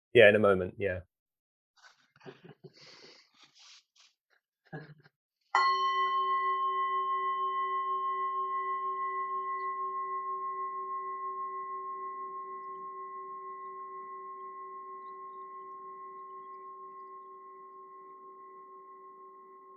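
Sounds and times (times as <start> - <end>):
speech: 0.1 - 1.1, 4.7 - 5.0, 5.6 - 6.4
meditation bell struck and ringing: 5.6 - 19.7.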